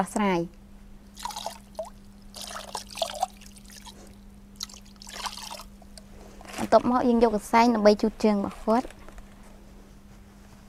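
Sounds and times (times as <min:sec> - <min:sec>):
speech: 0:00.0 - 0:00.6, 0:06.6 - 0:09.0
cold water trickling and splashing while washing a patient's feet: 0:01.2 - 0:06.0.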